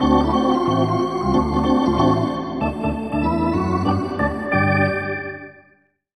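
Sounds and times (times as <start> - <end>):
hockey organ music: 0.0 - 5.7.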